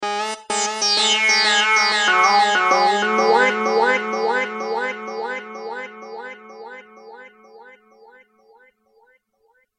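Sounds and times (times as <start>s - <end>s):
bass lead synth: 0.6s - 8.4s.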